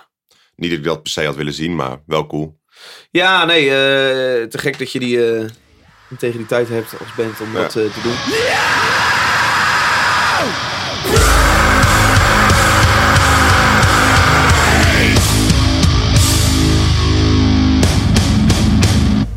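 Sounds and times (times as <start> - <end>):
speech: 0.6 - 9.0
falling sweep in a quiet metalcore intro: 5.6 - 15.5
loud dense distorted metalcore guitars: 5.6 - 19.3
screamed metalcore vocals: 5.8 - 15.5
pounding metalcore drums: 11.0 - 17.1.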